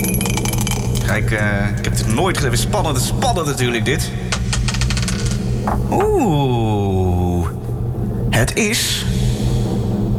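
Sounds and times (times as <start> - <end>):
low steady hum: 0.0 - 10.1
speech: 1.1 - 4.3, 5.7 - 7.2, 8.3 - 9.1
die rolled in a game clattering across a hard surface: 4.4 - 6.2.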